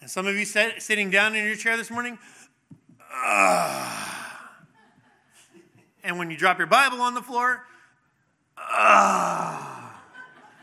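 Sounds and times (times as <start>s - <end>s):
speech: 0.1s - 2.4s, 3.1s - 4.1s, 6.0s - 7.7s, 8.6s - 9.7s
preacher imitating a groan: 3.0s - 4.6s, 8.6s - 10.1s
laughter: 4.6s - 6.0s, 9.8s - 10.6s.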